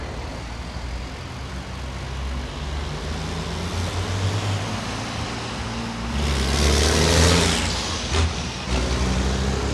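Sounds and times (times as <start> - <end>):
racing truck engines rumbling and revving at a race track: 1.8 - 9.7.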